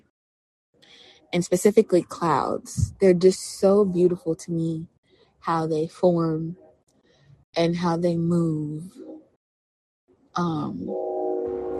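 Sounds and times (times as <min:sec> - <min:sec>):
speech: 0:00.9 - 0:06.6, 0:07.6 - 0:09.1, 0:10.4 - 0:11.0
train horn blaring in a long steady tone: 0:10.8 - 0:11.7.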